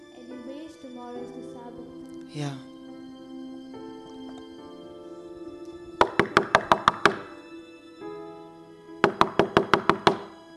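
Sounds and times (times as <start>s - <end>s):
speech: 1.0s - 2.7s
sharp knocking on a wooden door late at night: 6.0s - 7.4s, 9.0s - 10.4s.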